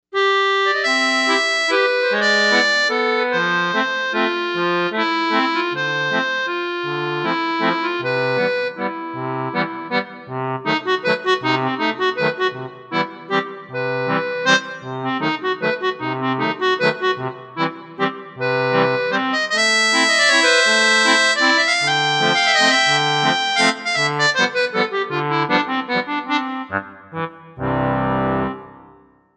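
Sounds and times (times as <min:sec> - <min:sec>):
accordion on a synthesizer: 0:00.2 - 0:29.1.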